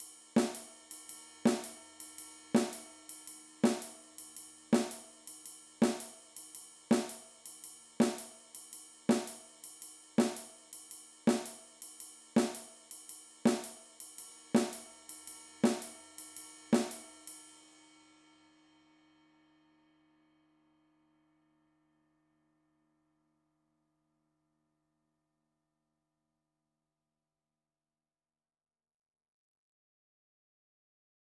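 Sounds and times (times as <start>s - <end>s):
simple snare drum comping: 0.4s - 0.7s, 1.5s - 1.8s, 2.6s - 2.8s, 3.7s - 4.0s, 4.8s - 5.0s, 5.8s - 6.1s, 6.9s - 7.2s, 8.0s - 8.3s, 9.1s - 9.4s, 10.2s - 10.5s, 11.3s - 11.6s, 12.4s - 12.7s, 13.5s - 13.8s, 14.6s - 14.8s, 15.7s - 16.0s, 16.8s - 17.0s.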